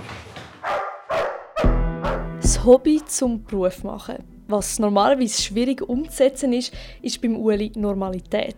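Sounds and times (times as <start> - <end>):
large police dog barking with deep gruff tone: 0.6 - 2.4
speech: 2.5 - 8.5.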